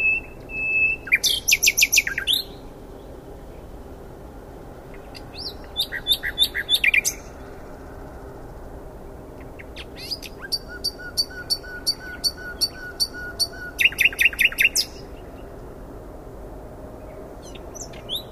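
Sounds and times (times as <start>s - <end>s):
Luscinia megarhynchos singing: 0.0s - 3.7s, 4.9s - 8.0s, 9.4s - 15.6s, 17.0s - 18.3s.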